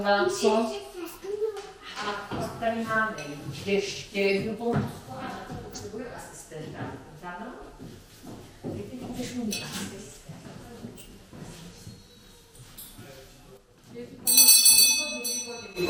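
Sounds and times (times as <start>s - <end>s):
speech: 0.0s - 0.9s, 2.0s - 10.1s
hand bell ringing: 14.3s - 15.8s.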